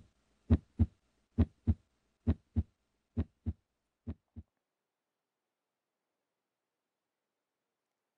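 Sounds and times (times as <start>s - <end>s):
heartbeat thumping in lub-dub pairs: 0.5s - 4.5s.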